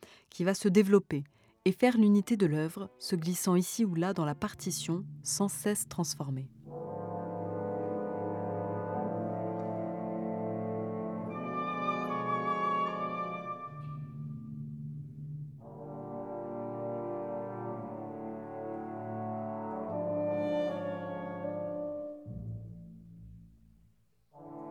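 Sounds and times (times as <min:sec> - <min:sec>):
speech: 0:00.4 - 0:06.6
cellos and double basses playing short motif in bowed notes: 0:04.5 - 0:23.8.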